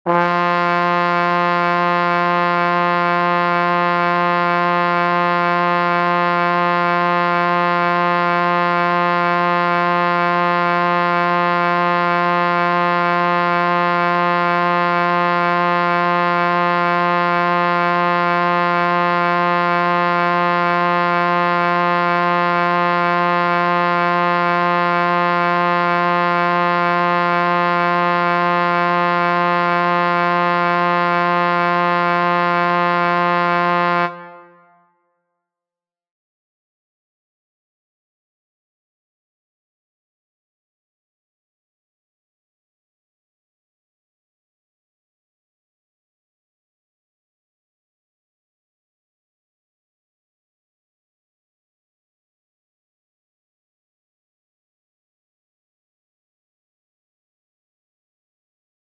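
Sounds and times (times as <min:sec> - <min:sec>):
800Hz tone of a trumpet in B: 0:00.0 - 0:35.0.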